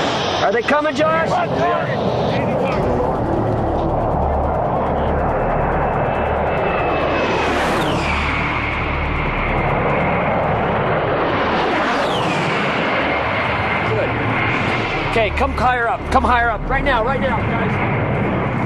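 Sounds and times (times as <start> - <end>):
A-10 Warthog jet flying low with piercing engine whine: 0.0 - 18.6
speech: 0.5 - 2.9, 15.2 - 18.0.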